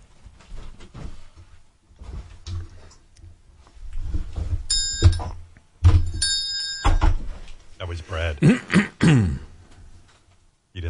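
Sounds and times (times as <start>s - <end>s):
small handbell ringing: 4.7s - 5.2s, 6.2s - 7.0s
speech: 8.0s - 8.8s.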